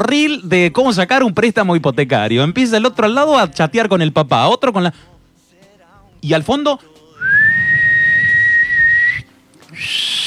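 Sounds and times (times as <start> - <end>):
speech: 0.0 - 5.1, 6.2 - 7.4, 9.8 - 10.2
faint low noise: 0.0 - 10.2
person whistling shrilly, imitating a concert crowd's jeering whistle: 7.2 - 10.2.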